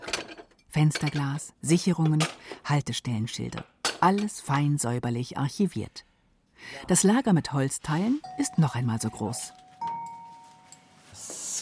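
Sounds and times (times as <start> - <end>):
speech: 0.8 - 9.6
tram railway crossing bell ringing: 8.2 - 10.9.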